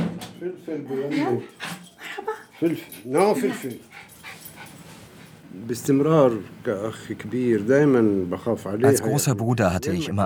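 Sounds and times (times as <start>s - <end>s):
speech: 0.4s - 1.8s, 2.6s - 4.1s, 5.5s - 10.2s
small white fluffy mixed-breed dog sniffing and snorting: 1.1s - 5.5s.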